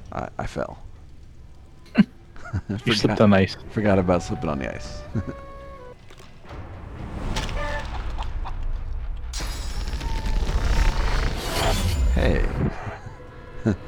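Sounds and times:
dense rumbling noise: 0:00.0 - 0:13.8
speech: 0:00.1 - 0:00.9, 0:01.9 - 0:05.5, 0:12.2 - 0:12.7, 0:13.6 - 0:13.8
laughter: 0:01.9 - 0:06.0, 0:12.7 - 0:13.8
chicken clucking: 0:02.4 - 0:06.0.

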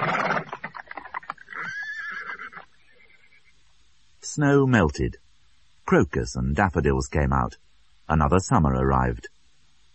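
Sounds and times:
horse hooves clopping on cobbles: 0:00.0 - 0:02.8
horse whinnying: 0:00.0 - 0:03.6
speech: 0:04.2 - 0:05.2, 0:05.9 - 0:09.3.

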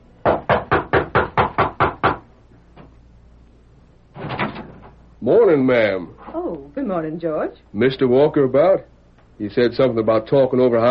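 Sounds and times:
knocking on the wooden back door of a ranch house: 0:00.2 - 0:02.2
speech: 0:05.3 - 0:06.2, 0:06.8 - 0:10.8.

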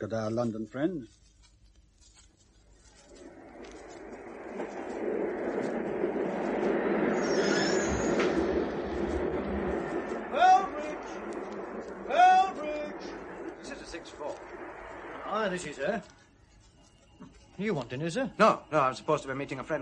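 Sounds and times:
speech: 0:00.0 - 0:01.2, 0:15.4 - 0:16.2, 0:17.6 - 0:19.8
train rumbling into a station: 0:03.0 - 0:16.2
sharp hisses or squeals of a train: 0:03.2 - 0:16.0
high metallic brake squeal of a train: 0:07.1 - 0:08.4.

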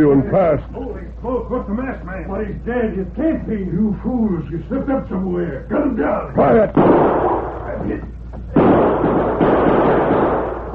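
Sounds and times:
speech: 0:00.0 - 0:08.1
voices: 0:00.0 - 0:09.4
bullets whining: 0:06.5 - 0:10.7
gunshots in a shootout at the corner of a building: 0:06.6 - 0:07.6, 0:08.5 - 0:10.7.

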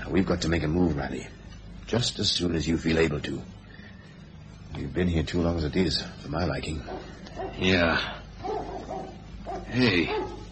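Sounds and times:
speech: 0:00.1 - 0:03.6, 0:04.8 - 0:08.2, 0:09.7 - 0:10.4
dog barking in the distance: 0:06.8 - 0:10.4.

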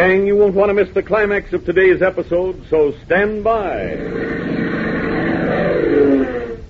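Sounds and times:
speech: 0:00.0 - 0:04.5
engine revving as throttle opens: 0:03.9 - 0:06.6.

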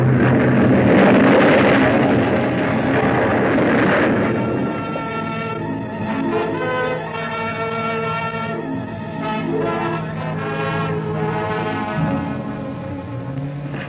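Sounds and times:
ship explosion after striking a reef: 0:00.0 - 0:07.2, 0:11.8 - 0:13.8
lower groaning ringing tones: 0:01.2 - 0:13.8.

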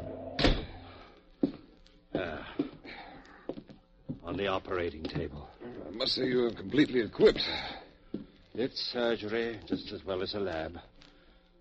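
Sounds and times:
wooden door kicked shut with a loud thud: 0:00.0 - 0:00.9
speech: 0:04.3 - 0:07.8, 0:08.6 - 0:10.9.

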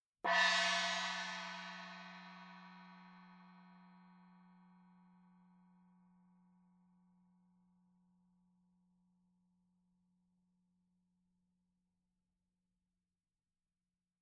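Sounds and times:
Ma Xi medium gong: 0:00.3 - 0:05.2.

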